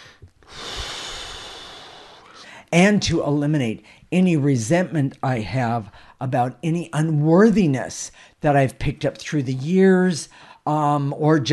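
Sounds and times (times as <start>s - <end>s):
person breathing in during guided breathing exercises: 0.0s - 2.7s, 10.3s - 10.6s
speech: 2.7s - 11.5s.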